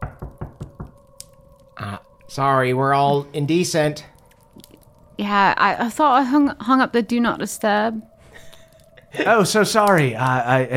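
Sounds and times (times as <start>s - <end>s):
knocking on a door: 0.0s - 1.0s
faint steady hum: 1.2s - 10.7s
speech: 1.8s - 4.1s, 5.2s - 8.1s, 9.1s - 10.7s.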